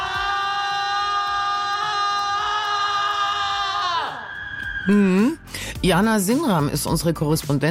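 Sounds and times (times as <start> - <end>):
students screaming at a student residence hall in Stockholm: 0.0 - 5.2
speech: 4.8 - 7.6.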